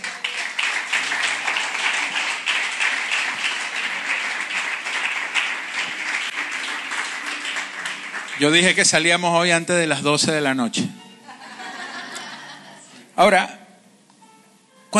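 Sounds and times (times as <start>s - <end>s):
audience applauding: 0.0s - 9.4s
speech: 8.4s - 11.0s, 13.2s - 13.6s
laughter: 11.3s - 13.0s.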